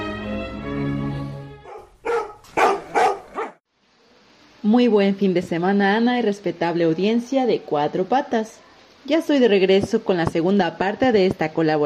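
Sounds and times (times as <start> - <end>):
dogs barking: 1.6 - 3.6
speech: 4.6 - 11.8.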